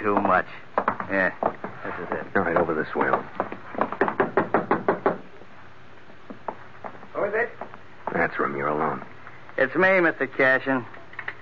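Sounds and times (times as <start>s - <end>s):
speech: 0.0s - 3.5s, 8.2s - 11.0s
firm knocking on a door: 0.1s - 5.3s.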